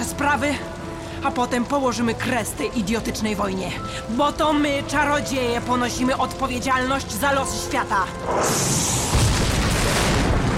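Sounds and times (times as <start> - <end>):
speech: 0.3 - 8.9
explosion of a ball lightning echoing off stone walls: 8.3 - 10.5.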